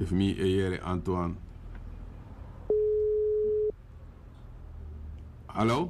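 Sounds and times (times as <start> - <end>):
speech: 0.0 - 1.5, 5.6 - 5.8
faint low hum: 0.0 - 5.8
electronic telephone busy signal: 2.7 - 3.7.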